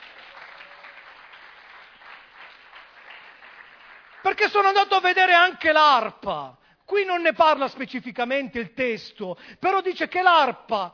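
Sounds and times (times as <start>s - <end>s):
audience applauding: 0.0s - 4.5s
speech: 4.2s - 10.9s.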